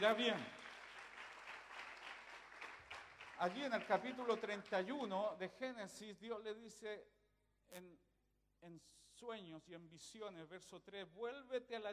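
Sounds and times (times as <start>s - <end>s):
speech: 0.0s - 0.6s, 3.4s - 11.9s
audience applauding: 0.0s - 5.1s.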